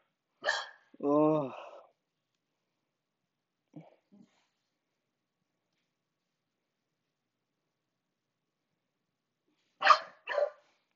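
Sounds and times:
dogs barking: 0.4s - 0.9s, 9.8s - 10.7s.

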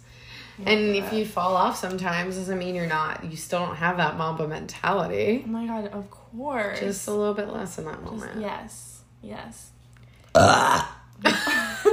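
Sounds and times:
speech: 0.6s - 9.7s, 10.3s - 11.4s
raspy drawn-out burps: 10.2s - 11.2s.

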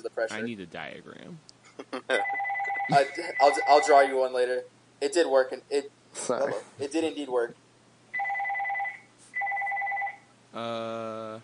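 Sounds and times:
speech: 0.2s - 7.6s, 10.5s - 11.4s
house phone ringing with warbling electronic trills: 2.2s - 4.1s, 8.2s - 10.3s.

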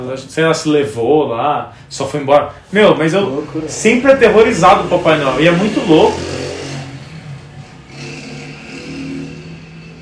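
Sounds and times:
speech: 0.0s - 6.4s
motorcycle engine revving outside: 3.2s - 10.0s.

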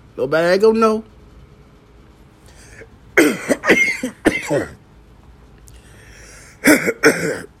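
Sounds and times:
speech: 0.2s - 1.1s, 4.5s - 4.8s, 7.0s - 7.5s
person coughing: 3.2s - 4.8s, 6.5s - 7.5s.

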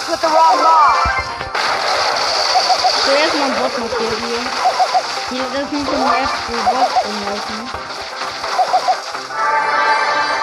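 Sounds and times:
speech: 0.1s - 0.9s, 3.1s - 8.0s
video game gunshots: 1.1s - 9.4s.

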